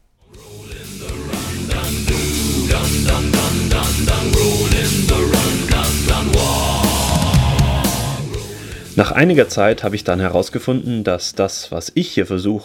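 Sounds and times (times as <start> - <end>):
a cappella singers imitating distorted guitars and bass in heavy-metal style: 0.2 - 9.4
steady pounding drums: 0.4 - 9.5
speech: 9.0 - 12.6.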